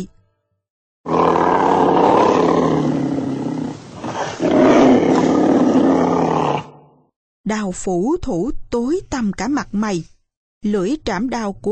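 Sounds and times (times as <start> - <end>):
white tiger roaring: 1.1 - 7.0
speech: 7.5 - 11.7.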